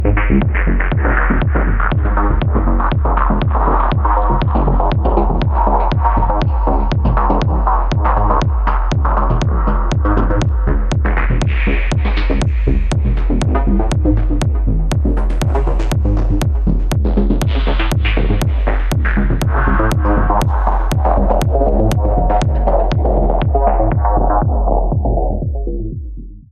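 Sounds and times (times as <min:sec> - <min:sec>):
techno rhythm: 0:00.0 - 0:26.5.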